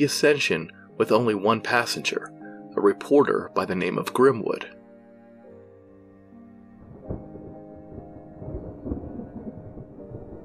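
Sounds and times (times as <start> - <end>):
speech: 0.0 - 4.8
thunder rumbling over water: 6.8 - 10.4.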